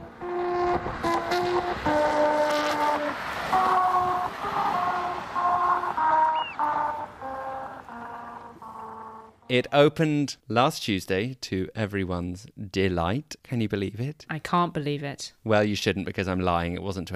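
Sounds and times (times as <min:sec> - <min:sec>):
car tyres droning a national anthem melody on a musical road: 0:00.0 - 0:09.5
steady rumble of road noise: 0:00.0 - 0:10.1
speech: 0:09.5 - 0:17.1.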